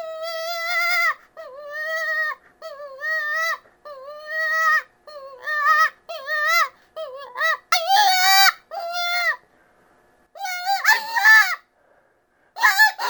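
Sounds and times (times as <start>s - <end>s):
cottontail rabbit distress squeals: 0.0s - 9.4s, 10.4s - 11.6s, 12.6s - 13.0s.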